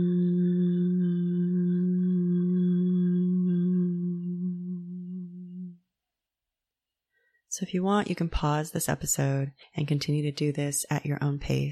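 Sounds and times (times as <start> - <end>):
person humming on exhale: 0.0 - 5.8
speech: 7.6 - 11.6.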